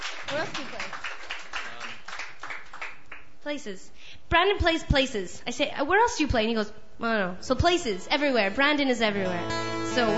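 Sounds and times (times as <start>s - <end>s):
crowd applause for a performer: 0.0s - 3.0s
speech: 0.3s - 1.2s, 3.4s - 10.1s.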